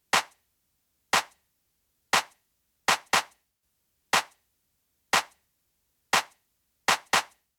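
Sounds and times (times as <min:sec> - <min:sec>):
dancefloor pop clap: 0:00.1 - 0:00.4, 0:01.1 - 0:01.5, 0:02.1 - 0:03.4, 0:04.2 - 0:04.4, 0:05.1 - 0:05.4, 0:06.1 - 0:07.5.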